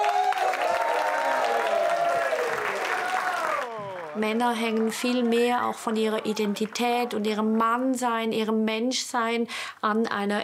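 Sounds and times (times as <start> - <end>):
audience applause for a comedian: 0.0 - 7.5
crowd cheering: 0.0 - 7.6
speech: 4.2 - 10.4.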